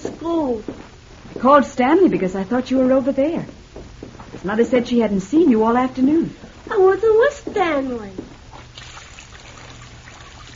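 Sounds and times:
speech: 0.2s - 0.8s, 1.4s - 3.6s, 4.4s - 8.2s
running water for washing trickling: 8.5s - 10.5s.

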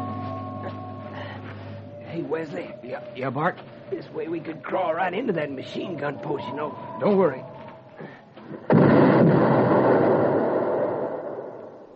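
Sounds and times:
speech: 2.2s - 8.6s
landmine explosion: 8.6s - 11.9s.

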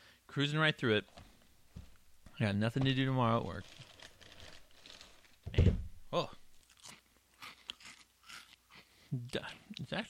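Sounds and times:
speech: 0.3s - 1.2s, 2.4s - 3.9s, 6.1s - 6.4s, 9.3s - 10.0s
brittle cracking: 3.4s - 5.5s
cinnamon-dusted snack mix being chewed: 6.6s - 9.9s.

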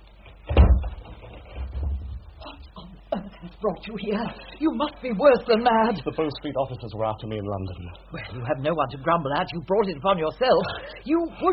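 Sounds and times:
door swinging shut with a dull thud: 0.5s - 2.3s
speech: 3.6s - 11.5s.

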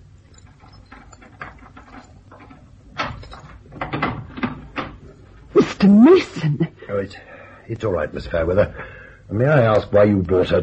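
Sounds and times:
knocking and shuffling: 0.0s - 5.8s
skeleton keys clicking and rattling in the lock of a door: 0.2s - 5.4s
door creaking open: 0.3s - 5.2s
speech: 5.8s - 10.6s.

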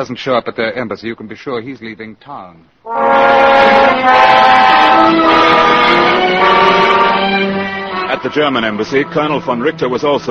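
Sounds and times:
speech: 0.0s - 7.4s, 8.1s - 10.2s
rail cars rumbling at a railroad station: 2.9s - 10.2s
train horn blaring at a railroad station: 2.9s - 10.2s.

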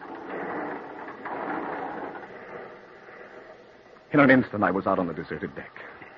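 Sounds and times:
heavy sliding door grinding open: 0.0s - 4.0s
speech: 4.1s - 5.9s.

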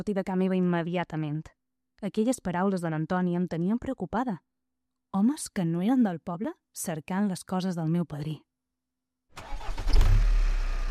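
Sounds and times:
speech: 0.0s - 4.5s, 5.1s - 8.5s
car engine starting and idling in a parking garage: 9.4s - 10.8s.

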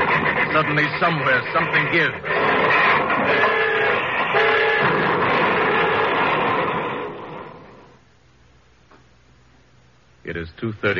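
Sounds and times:
express train rushing past at speed at night: 0.0s - 8.0s
speech: 0.6s - 2.4s, 10.3s - 10.9s
sustained train horn blasts: 3.3s - 6.3s.

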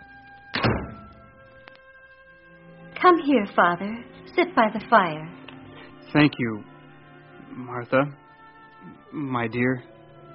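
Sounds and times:
house door thud: 0.5s - 1.6s
speech: 3.0s - 5.4s, 6.1s - 6.7s, 7.6s - 8.2s, 8.8s - 9.9s.

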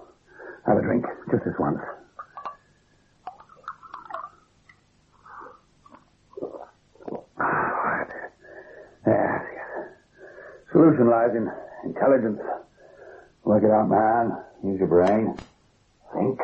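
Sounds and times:
slow deep rasping breathing: 0.0s - 0.7s, 7.4s - 10.7s, 12.6s - 13.4s
speech: 0.7s - 2.1s, 10.8s - 12.6s, 13.4s - 15.5s, 16.1s - 16.4s.

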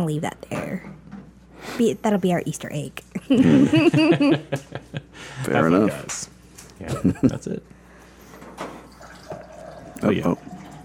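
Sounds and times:
speech: 0.0s - 1.0s, 1.6s - 7.8s, 10.0s - 10.5s
laughter: 3.3s - 6.1s, 6.8s - 7.6s
water running from a tap into a glass at a sink: 8.8s - 10.8s.

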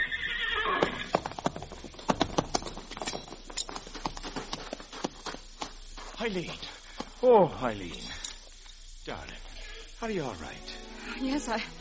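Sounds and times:
ridden horse neighing: 0.0s - 1.4s
horse hooves clip-clopping on hard ground: 0.7s - 8.8s
speech: 6.2s - 8.1s, 10.0s - 11.7s.

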